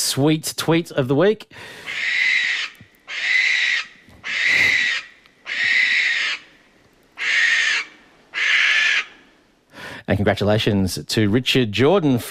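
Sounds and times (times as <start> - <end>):
speech: 0.1 - 2.3, 10.1 - 12.2
barn owl screeching: 1.8 - 6.6, 7.2 - 9.3.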